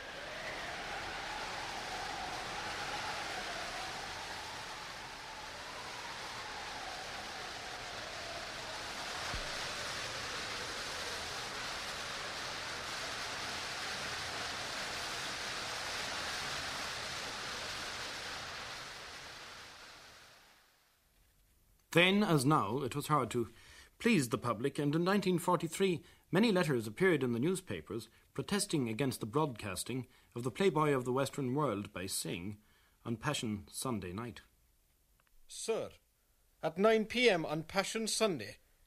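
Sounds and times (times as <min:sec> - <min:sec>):
raging storm roaring: 0:00.0 - 0:20.7
shrill wind howling: 0:00.0 - 0:20.8
speech: 0:22.0 - 0:34.5, 0:35.5 - 0:36.0, 0:36.6 - 0:38.8.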